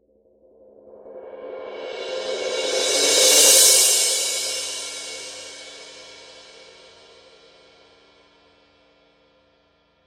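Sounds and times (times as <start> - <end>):
19-inch wild crash cymbal roll: 1.6 - 7.0.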